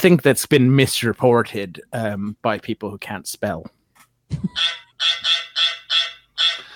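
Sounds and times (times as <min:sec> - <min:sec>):
speech: 0:00.0 - 0:05.4
geese honking: 0:04.6 - 0:06.7.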